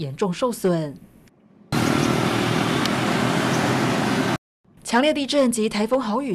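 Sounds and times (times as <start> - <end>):
speech: 0.0 - 1.1, 4.9 - 6.3
military truck engine and road noise on a damaged rough road in the Philippines: 1.5 - 4.4.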